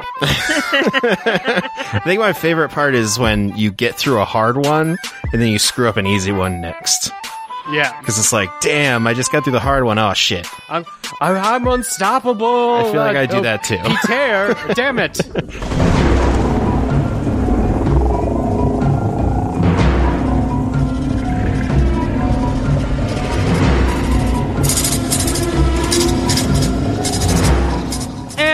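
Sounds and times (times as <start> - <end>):
laughter: 0.0 - 2.3, 12.8 - 15.7
speech: 0.2 - 16.4
deep rolling thunder: 14.8 - 28.4
heavy rain: 15.2 - 27.0.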